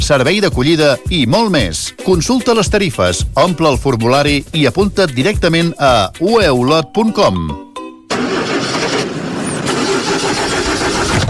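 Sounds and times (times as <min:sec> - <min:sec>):
speech: 0:00.0 - 0:07.6
car engine starting: 0:08.1 - 0:11.2.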